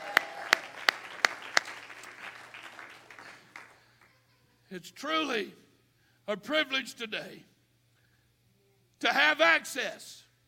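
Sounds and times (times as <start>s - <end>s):
crowd clapping: 0.0s - 4.2s
speech: 4.7s - 5.6s, 6.3s - 7.5s, 9.0s - 10.3s.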